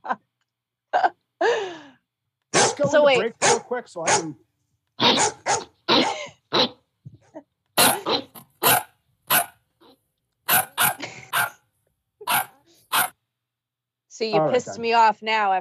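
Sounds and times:
dog barking: 2.5s - 4.4s, 5.0s - 6.8s, 7.8s - 9.6s, 10.5s - 11.6s, 12.2s - 13.2s
speech: 2.9s - 4.4s, 14.2s - 15.6s.

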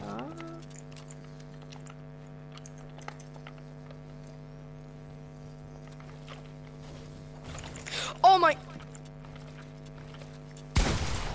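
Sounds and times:
low hum: 0.0s - 11.3s
speech: 8.4s - 8.7s
video game gunshot fired through a wall: 10.8s - 11.3s.

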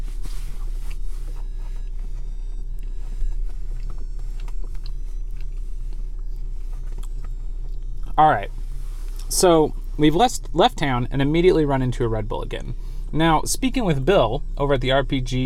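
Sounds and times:
steady low hum: 0.0s - 15.4s
soft chewing of food with small crunches: 0.6s - 8.2s
speech: 8.2s - 8.6s, 9.3s - 15.4s.

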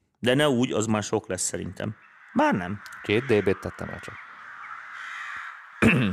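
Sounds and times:
speech: 0.2s - 4.2s
crows cawing: 1.8s - 6.0s.

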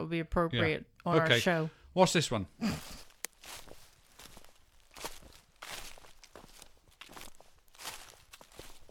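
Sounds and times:
speech: 0.0s - 3.6s
footsteps crunching through dry fallen leaves: 2.8s - 8.8s.

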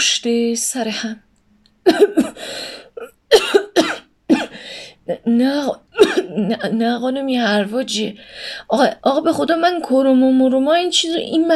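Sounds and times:
speech: 0.0s - 2.5s, 5.1s - 11.5s
person in a harsh raspy coughing fit: 1.8s - 4.6s, 6.0s - 6.4s.

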